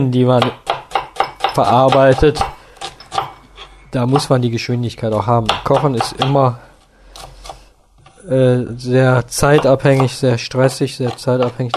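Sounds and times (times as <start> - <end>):
speech: 0.0 - 0.7, 1.6 - 2.5, 3.9 - 6.7, 8.2 - 11.7
knife dicing onions on a cutting board: 0.4 - 3.3, 5.1 - 6.5, 9.5 - 11.7.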